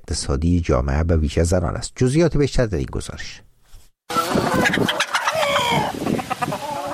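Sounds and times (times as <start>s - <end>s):
speech: 0.1s - 3.5s, 4.8s - 5.0s
many chickens clucking and squawking at a poultry farm in Nili Afghanistan: 4.1s - 6.9s.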